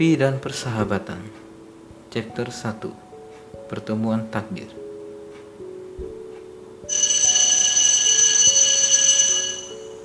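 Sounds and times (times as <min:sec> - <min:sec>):
speech: 0:00.0 - 0:01.4, 0:02.1 - 0:03.0, 0:03.7 - 0:04.8
school bell ringing: 0:06.9 - 0:10.0.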